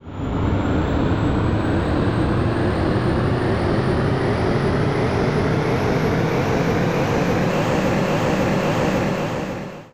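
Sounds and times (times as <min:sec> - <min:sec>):
jet plane: 0:00.0 - 0:09.9.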